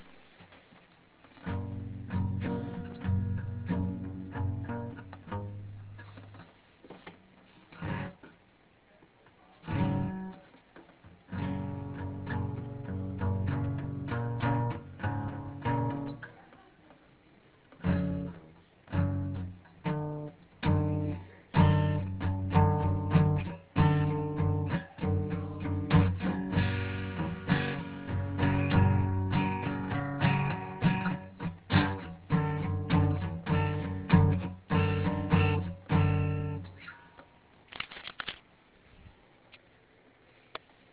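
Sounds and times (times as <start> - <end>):
distorted guitar with crunch: 1.3 - 6.5, 7.7 - 8.4, 9.6 - 16.3, 17.7 - 37.2.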